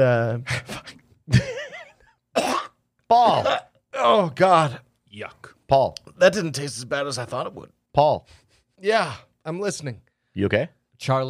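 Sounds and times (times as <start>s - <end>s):
speech: 0.0s - 1.5s, 3.1s - 11.2s
wet gurgling cough of a person coughing up water: 2.4s - 3.8s.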